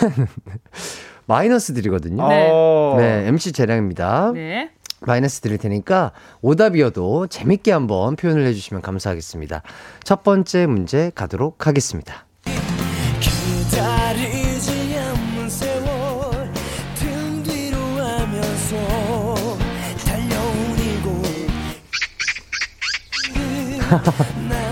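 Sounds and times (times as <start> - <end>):
speech: 0.0 - 12.3, 23.9 - 24.4
recorded song with wavering vocals over full band backing: 12.4 - 21.9, 23.2 - 24.7
laughter: 23.6 - 24.7.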